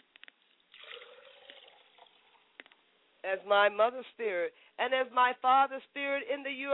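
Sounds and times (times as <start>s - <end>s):
liquid poured as a libation in the Yoruba faith: 0.5s - 2.8s
drips and splashes of poured liquid: 0.7s - 2.6s
speech: 3.2s - 6.7s.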